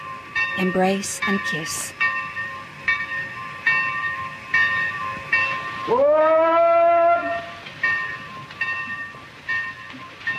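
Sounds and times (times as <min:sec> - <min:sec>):
train rumbling at a station platform as it pulls away: 0:00.0 - 0:10.3
speech: 0:00.6 - 0:02.0, 0:05.9 - 0:06.4
loud train whistle: 0:05.9 - 0:07.6.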